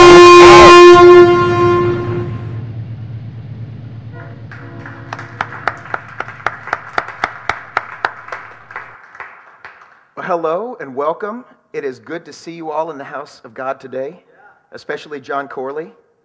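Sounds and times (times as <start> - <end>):
loud blaring horn: 0.0 - 2.8, 4.0 - 7.3
low steady rumble: 0.0 - 9.0
speech: 10.9 - 16.0.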